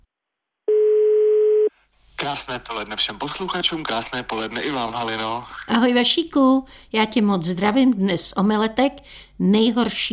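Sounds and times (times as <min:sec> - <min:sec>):
telephone call tone while a call is placed: 0:00.7 - 0:01.7
speech: 0:02.3 - 0:10.1.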